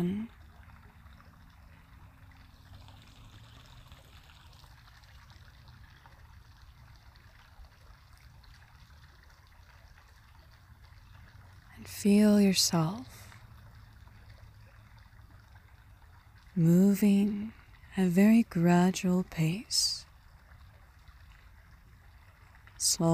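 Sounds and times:
speech: 0.0 - 0.4, 12.0 - 13.2, 16.6 - 20.0, 22.8 - 23.1
water trickling: 0.0 - 23.1.

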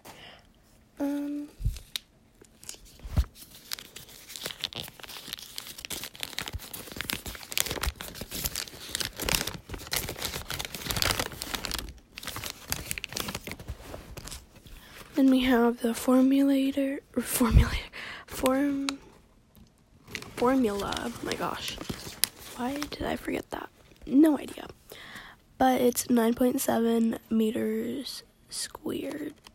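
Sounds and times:
sheets of math paper being crumpled and handled: 1.1 - 15.6, 20.1 - 23.4
speech: 15.5 - 18.9, 20.4 - 21.8, 22.6 - 24.6, 25.6 - 29.4.

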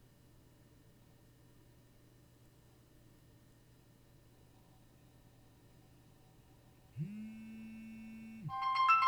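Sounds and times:
mobile phone steady low buzz: 7.0 - 9.0
mobile phone bright electronic ringtone chirping: 8.4 - 9.0.

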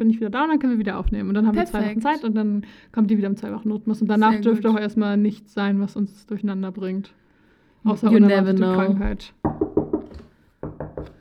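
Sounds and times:
speech: 0.0 - 7.2, 7.8 - 9.7
knuckles knocking on wood: 9.1 - 11.1.

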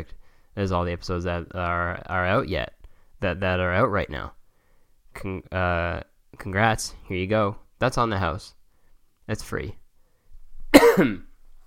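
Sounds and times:
speech: 0.0 - 4.4, 5.2 - 8.6, 9.3 - 9.8, 10.7 - 11.3
rough throat clearing: 10.7 - 11.3
sick person coughing: 10.7 - 11.3.

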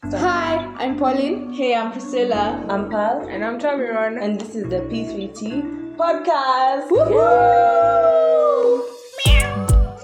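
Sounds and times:
speech: 0.1 - 8.9
resident cat meowing: 9.2 - 10.0.

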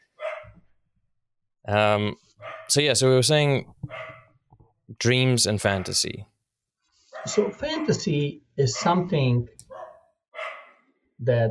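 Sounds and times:
dogs barking excitedly at a delivery: 0.0 - 0.6, 2.4 - 2.7, 3.8 - 4.4, 5.7 - 6.1, 7.1 - 7.7, 8.8 - 9.0, 9.6 - 10.9
speech: 1.6 - 4.1, 4.9 - 6.3, 7.2 - 9.6, 11.2 - 11.4.

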